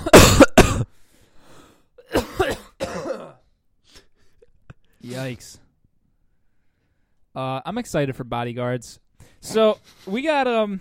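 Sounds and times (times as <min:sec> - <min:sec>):
person coughing: 0:00.0 - 0:01.0, 0:02.0 - 0:03.6
speech: 0:05.2 - 0:05.6, 0:07.4 - 0:10.7.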